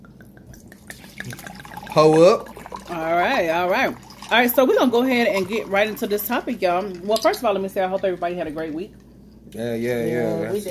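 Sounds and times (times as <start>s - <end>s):
sangria being poured into a glass: 0.4s - 3.0s, 3.8s - 7.4s
speech: 2.0s - 10.7s.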